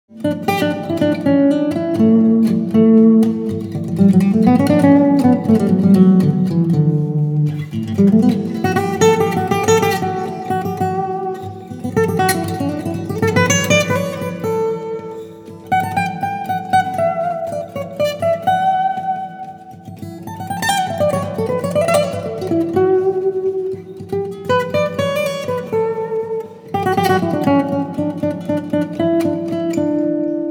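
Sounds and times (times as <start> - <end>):
solo guitar: 0.1 - 30.5.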